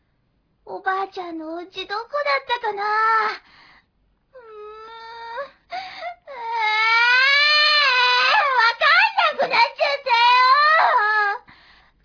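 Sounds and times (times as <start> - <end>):
speech: 1.0 - 3.6
child crying loudly with wails and sobs: 4.4 - 11.4.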